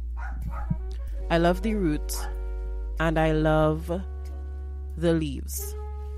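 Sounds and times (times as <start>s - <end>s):
pet dogs barking: 0.2s - 0.9s
speech: 1.3s - 2.4s, 3.0s - 4.1s, 5.0s - 5.8s.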